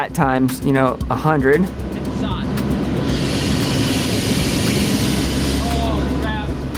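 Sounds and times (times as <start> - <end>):
speech: 0.0 - 2.3
deep aircraft engine rumble: 0.0 - 6.7
heavy rain pounding an aircraft cockpit: 1.8 - 6.7.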